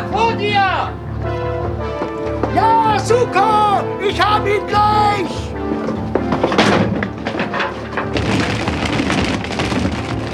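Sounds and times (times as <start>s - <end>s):
laughter: 0.0s - 10.3s
many small items scattering and rolling across the ground: 0.0s - 10.3s
speech: 2.6s - 5.7s
crash of fruit stand being knocked over: 5.5s - 10.3s.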